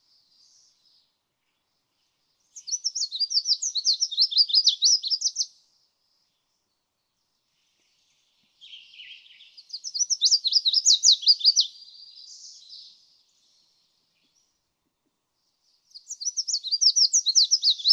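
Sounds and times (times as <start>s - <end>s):
red-faced warbler song: 0.0s - 5.6s, 6.2s - 14.6s, 15.4s - 17.9s.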